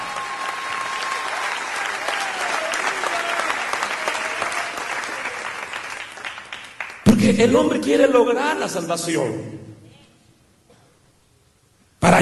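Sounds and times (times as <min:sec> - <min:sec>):
audience applauding: 0:00.0 - 0:07.1
speech: 0:07.3 - 0:09.6.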